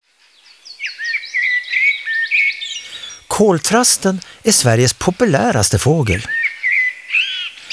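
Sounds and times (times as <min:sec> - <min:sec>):
lark song: 0:00.8 - 0:07.7
speech: 0:03.4 - 0:06.4.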